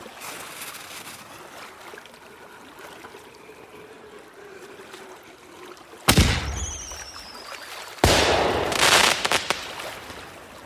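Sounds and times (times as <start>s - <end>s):
fireworks blasts launched from a three-masted ship at a birthday celebration: 8.0s - 10.1s.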